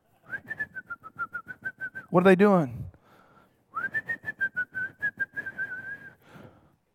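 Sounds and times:
person whistling a high note in imitation of a bird: 0.3s - 2.1s, 3.7s - 6.2s
speech: 2.1s - 2.8s.

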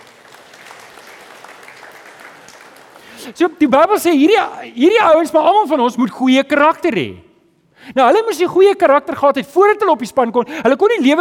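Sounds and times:
audience applauding: 0.0s - 3.3s
speech: 3.2s - 11.1s.

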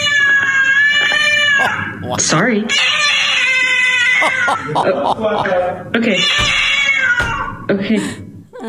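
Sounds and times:
annoyed cat meowing and caterwauling at home: 0.0s - 4.7s, 6.0s - 7.7s
speech: 2.1s - 3.0s, 4.2s - 6.7s, 7.7s - 8.2s
laughter: 4.1s - 5.8s.

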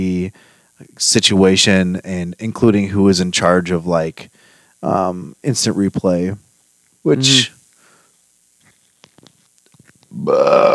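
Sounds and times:
speech: 0.0s - 7.6s, 10.1s - 10.7s
person burping: 10.1s - 10.7s.

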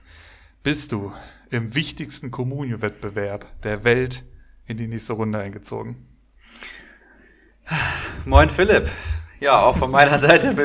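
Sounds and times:
heavy breathing with puffing exhale: 0.0s - 1.5s, 6.4s - 9.4s
speech: 0.6s - 6.8s, 7.7s - 10.6s.

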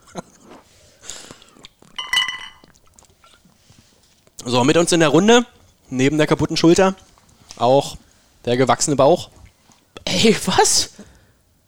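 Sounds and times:
glasses clinking in a toast: 2.0s - 2.7s
speech: 4.4s - 9.4s, 10.1s - 11.1s.

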